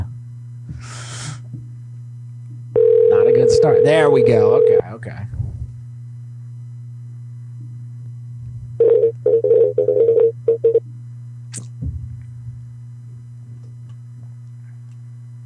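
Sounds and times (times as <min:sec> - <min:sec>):
steady low phone dial tone: 0:02.8 - 0:04.8, 0:08.8 - 0:10.8
speech: 0:03.5 - 0:05.3.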